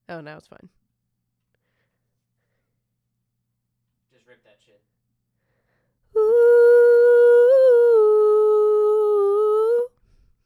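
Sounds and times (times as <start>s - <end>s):
voices singing in harmony: 6.2s - 9.9s.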